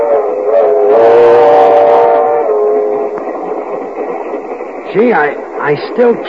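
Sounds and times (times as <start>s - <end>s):
train whistle blowing: 0.0s - 3.8s
train rumbling: 0.0s - 6.2s
speech: 5.0s - 6.2s.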